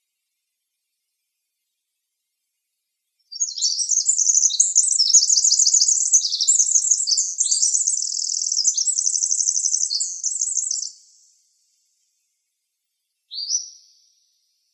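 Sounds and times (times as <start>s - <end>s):
winter wren song with high bubbling trills and warbles in Arizona: 3.2s - 12.2s, 13.2s - 14.7s.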